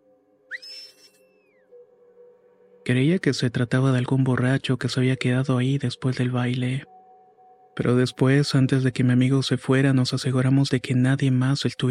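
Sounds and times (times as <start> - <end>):
human whistle: 0.5 - 1.6
speech: 2.9 - 6.9, 7.8 - 11.8.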